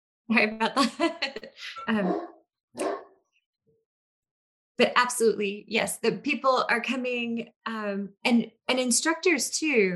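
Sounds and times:
speech: 0.3s - 2.9s, 4.8s - 9.9s
dog barking: 2.0s - 3.2s.

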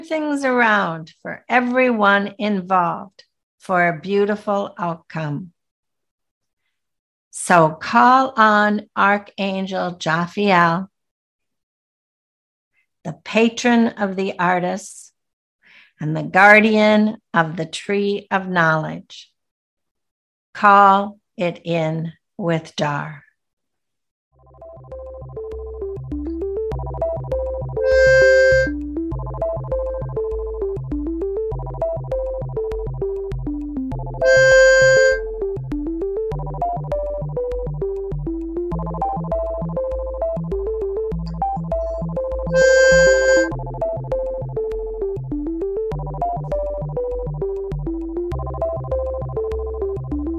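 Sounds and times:
speech: 0.0s - 5.6s, 7.4s - 10.9s, 13.0s - 15.0s, 16.0s - 19.3s, 20.6s - 23.2s
soft continuous melodic music bed: 24.6s - 50.3s
miniature flute sustained 528 Hz tones: 27.8s - 28.7s, 42.5s - 43.6s.

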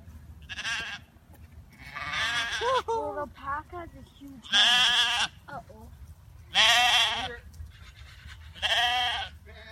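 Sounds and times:
sheep bleating: 0.4s - 1.1s, 1.8s - 2.8s, 4.4s - 5.4s, 6.5s - 9.7s
speech: 3.2s - 7.6s.

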